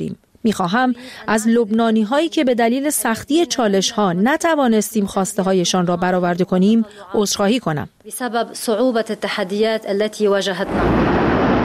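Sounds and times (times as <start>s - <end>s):
speech: 0.0s - 11.2s
huge ammonium nitrate warehouse explosion: 10.6s - 11.6s.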